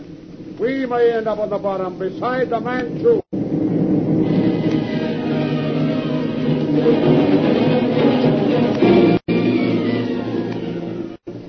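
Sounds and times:
blustery typhoon wind: 0.1s - 10.2s
speech: 0.6s - 3.2s
raging typhoon roaring with deep rumbling: 2.4s - 11.4s.

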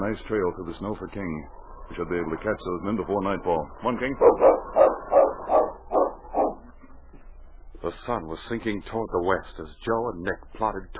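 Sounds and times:
speech: 0.0s - 5.1s, 7.8s - 10.9s
dog barking: 4.2s - 6.6s.

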